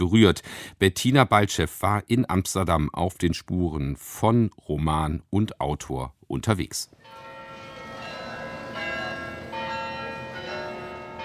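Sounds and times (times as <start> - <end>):
speech: 0.0 - 7.2
church bells ringing from a tower: 7.0 - 11.2.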